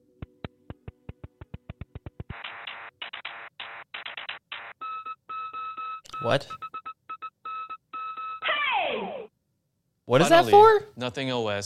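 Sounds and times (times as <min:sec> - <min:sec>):
synthesized phone ringtone beeps and tones: 0:04.6 - 0:08.5
speech: 0:06.2 - 0:06.6, 0:10.1 - 0:11.6.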